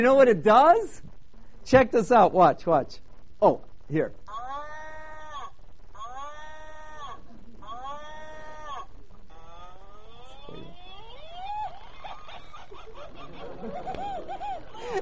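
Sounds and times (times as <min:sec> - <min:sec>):
speech: 0:00.0 - 0:04.5
steady hiss: 0:00.0 - 0:15.0
battery-powered toy playing man's voice imitating cow moo: 0:04.3 - 0:11.6
laughter: 0:11.4 - 0:15.0.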